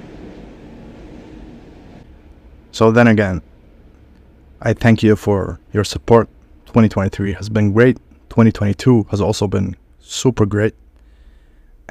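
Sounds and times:
tram rumbling past: 0.0s - 4.6s
speech: 2.8s - 3.5s, 4.6s - 10.8s.

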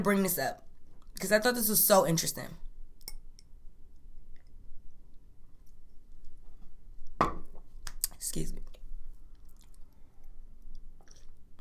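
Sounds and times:
speech: 0.0s - 2.7s, 8.2s - 8.6s
wet mouth and swallowing noises while sipping a drink: 4.2s - 11.5s.

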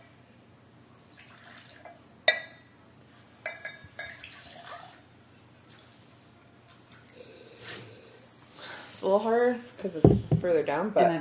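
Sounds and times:
water glass clinking: 2.3s - 2.7s, 3.4s - 4.3s
speech: 9.1s - 11.1s.

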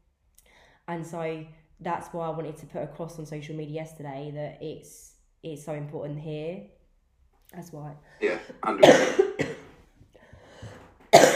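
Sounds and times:
faint breathing: 0.4s - 0.9s, 10.1s - 11.0s
speech: 0.9s - 6.8s, 7.5s - 9.5s
harsh coughing: 8.2s - 9.7s, 11.1s - 11.3s.

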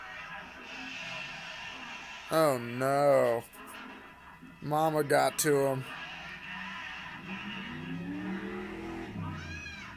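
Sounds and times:
speech: 2.3s - 3.6s, 4.6s - 6.0s
race car tire squeal: 6.6s - 9.9s
race car engine revving while driving past outside: 7.0s - 9.9s.

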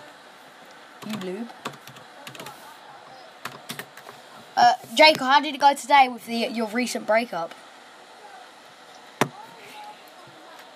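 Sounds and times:
faint hiss: 0.0s - 10.7s
speech: 1.0s - 1.8s, 4.8s - 7.6s
typing on a computer keyboard: 1.0s - 2.6s, 3.4s - 4.0s.

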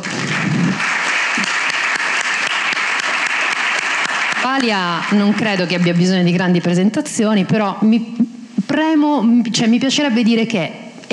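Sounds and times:
audience applause: 0.0s - 5.9s
speech: 4.5s - 11.1s.

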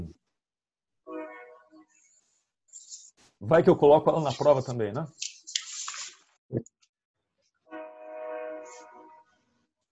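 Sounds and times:
speech: 3.4s - 5.3s
train horn blast: 7.7s - 9.3s.

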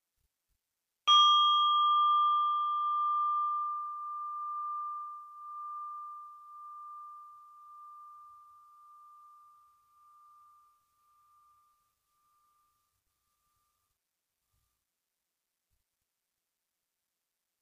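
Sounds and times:
meditation bell struck and ringing: 1.1s - 13.0s.

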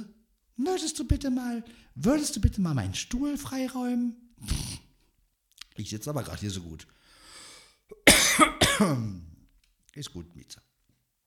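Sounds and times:
speech: 0.6s - 4.6s, 5.8s - 7.0s, 7.9s - 9.3s, 10.0s - 10.7s
person coughing harshly: 7.9s - 9.1s.

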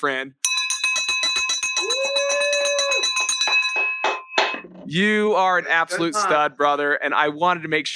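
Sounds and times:
speech: 0.0s - 0.4s, 4.9s - 7.9s
handheld school recess bell shaken rapidly as a victory bell: 0.4s - 4.6s
laughter: 4.9s - 6.8s.

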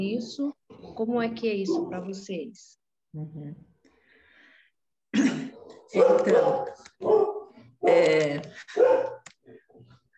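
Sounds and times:
speech: 0.0s - 3.7s, 5.2s - 9.9s
dog barking: 5.9s - 7.6s, 8.8s - 9.2s.

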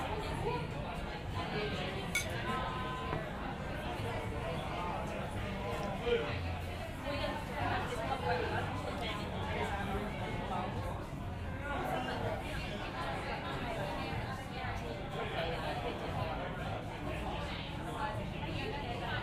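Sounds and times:
murmur of many overlapping voices in a busy pub: 0.0s - 19.2s
glass clinks: 2.1s - 2.4s.

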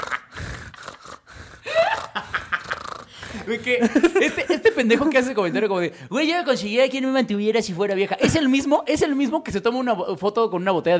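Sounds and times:
person imitating heavy gasping breathing of a hunched man at a desk: 0.0s - 3.8s
laughter: 1.7s - 5.7s
speech: 3.4s - 10.9s.

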